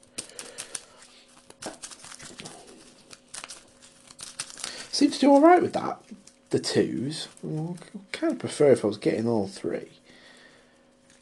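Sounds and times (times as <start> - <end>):
card game deck being shuffled: 0.0 - 8.6
speech: 5.0 - 10.0.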